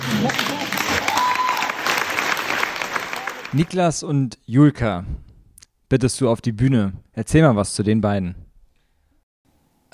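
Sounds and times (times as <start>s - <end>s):
audience applause: 0.0s - 3.7s
speech: 0.2s - 0.6s, 3.5s - 5.2s, 5.9s - 8.4s.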